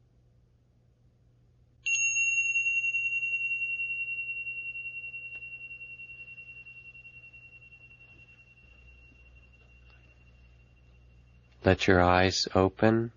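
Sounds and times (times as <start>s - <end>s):
quiet low hum: 0.0s - 12.0s
meditation bell struck, clear high tone ringing: 1.8s - 11.6s
speech: 11.6s - 13.1s.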